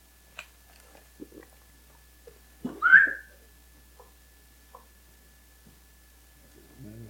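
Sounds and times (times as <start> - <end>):
rustling: 0.3 - 3.2
person whistling: 2.8 - 3.3.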